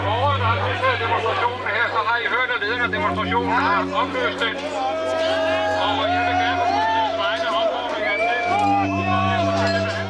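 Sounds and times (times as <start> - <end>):
crowd of demonstrators shouting and yelling while rioting: 0.0 - 10.0.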